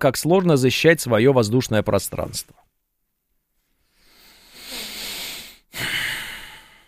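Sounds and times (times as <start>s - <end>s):
speech: 0.0s - 2.8s
heavy breathing into a microphone: 3.8s - 6.8s.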